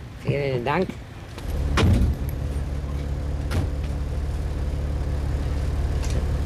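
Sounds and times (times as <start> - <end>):
speech: 0.2 - 1.1
low engine drone of a car used to haul milk: 1.3 - 6.4
loud thump: 1.4 - 2.7, 3.4 - 4.0.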